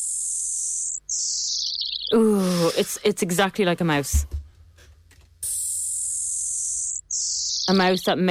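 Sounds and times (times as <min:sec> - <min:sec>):
shrill high-pitched electronic squeal from a repeating space radio signal converted to sound: 0:00.0 - 0:02.2, 0:05.4 - 0:08.0
speech: 0:02.1 - 0:04.4, 0:07.7 - 0:08.3.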